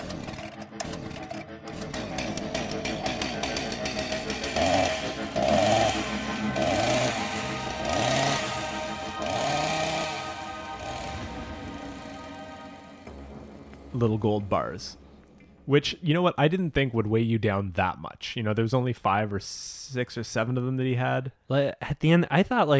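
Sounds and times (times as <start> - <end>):
small two-stroke chainsaw engine revving: 0.0 - 12.8
speech: 14.0 - 15.0, 15.7 - 22.7.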